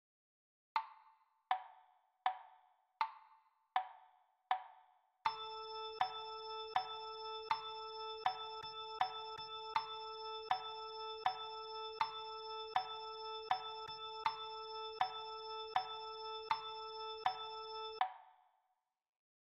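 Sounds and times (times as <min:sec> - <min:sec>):
rhythm patterns on the note A: 0:05.3 - 0:18.1.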